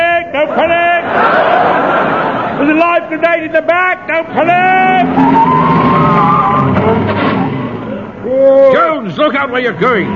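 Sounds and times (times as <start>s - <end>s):
laughter: 0.4s - 3.5s
speech: 3.0s - 5.8s, 8.5s - 10.1s
van turning round with a continuous loud engine roar: 4.2s - 8.6s
high tire squeal: 4.4s - 8.0s.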